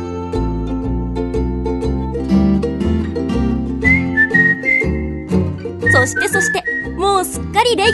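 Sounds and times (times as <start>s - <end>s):
instrumental backing with rhythmic bass and chords: 0.0s - 7.9s
whistled melody: 3.1s - 7.9s
speech: 6.0s - 7.9s.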